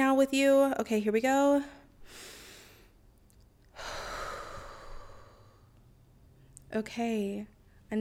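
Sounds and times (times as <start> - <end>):
speech: 0.2 - 2.2, 6.7 - 7.9
deep breath in and out: 2.0 - 3.0, 3.7 - 5.8.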